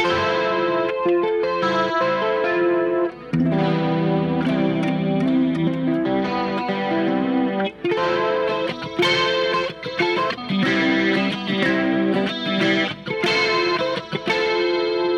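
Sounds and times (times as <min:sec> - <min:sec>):
electric guitar strumming open-chord shapes with chorus and distortion effects: 0:00.0 - 0:15.1.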